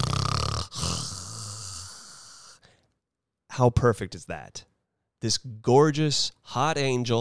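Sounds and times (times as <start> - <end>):
woman snoring loudly while asleep: 0.0 - 2.6
speech: 3.6 - 7.1.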